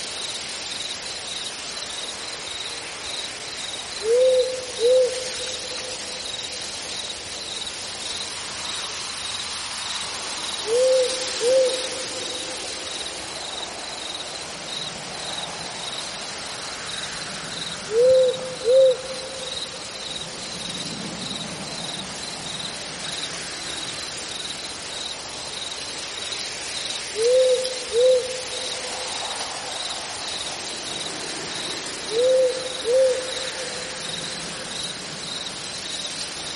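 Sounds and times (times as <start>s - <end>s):
cicadas chirring: 0.0s - 36.5s
faint soft rumble of wind: 0.0s - 36.5s
owl calling at night with short double hoots: 4.0s - 6.0s, 10.6s - 12.6s, 17.9s - 19.6s, 27.2s - 28.9s, 32.1s - 33.9s.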